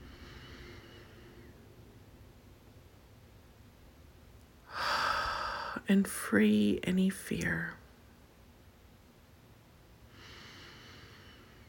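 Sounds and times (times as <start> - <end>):
deep breath in during a guided relaxation session: 0.0 - 1.6, 4.7 - 5.8, 10.1 - 11.6
faint steady hiss: 0.0 - 11.6
speech: 5.9 - 7.8.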